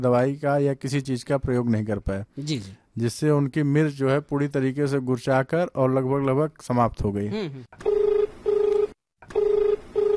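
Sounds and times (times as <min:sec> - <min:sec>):
speech: 0:00.0 - 0:07.9
telephone ringing with an incoming call: 0:07.8 - 0:10.1.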